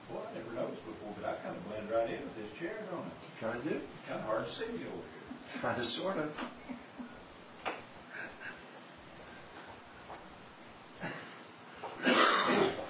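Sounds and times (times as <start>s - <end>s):
speech: 0.4s - 6.8s
person coughing: 12.0s - 12.8s.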